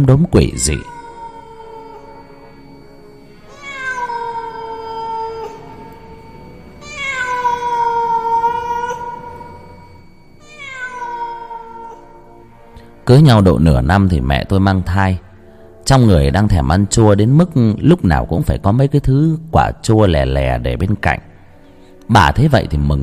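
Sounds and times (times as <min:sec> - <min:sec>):
speech: 0:00.0 - 0:01.0, 0:13.1 - 0:15.2, 0:15.9 - 0:21.3, 0:22.1 - 0:23.0
black cat meowing: 0:00.7 - 0:02.2, 0:03.5 - 0:09.8, 0:10.4 - 0:12.4.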